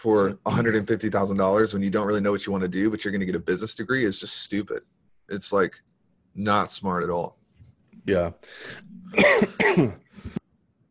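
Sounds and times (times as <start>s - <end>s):
speech: 0.0s - 7.4s, 8.0s - 10.4s
person coughing harshly: 9.0s - 10.4s
throat clearing: 9.0s - 10.4s.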